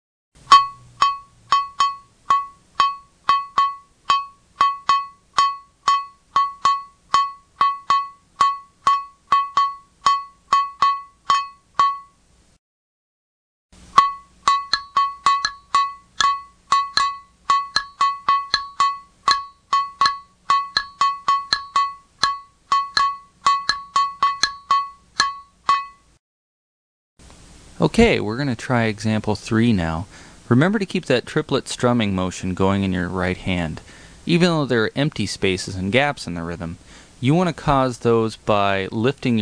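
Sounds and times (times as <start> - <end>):
metronome ticking: 0.4 - 12.2, 13.8 - 26.2
bright bell ringing in a repeating rhythm pattern: 0.5 - 12.2, 14.0 - 26.0
speech: 27.8 - 39.3.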